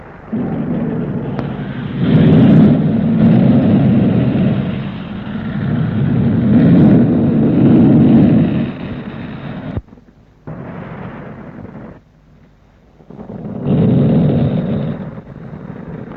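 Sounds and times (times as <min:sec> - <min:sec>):
Gemini 6 rocket engines roaring at lift-off from the launch pad: 0:00.0 - 0:16.1.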